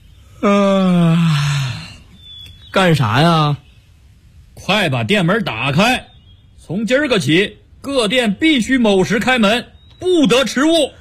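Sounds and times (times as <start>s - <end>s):
performer voicing a long yawn: 0.3s - 2.2s
speech: 2.8s - 3.6s, 4.6s - 6.1s, 6.7s - 11.0s.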